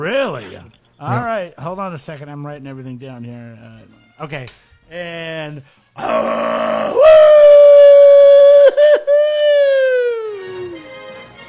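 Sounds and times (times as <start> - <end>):
speech: 0.0 - 7.5
wolf howling hoarsely: 6.0 - 9.0.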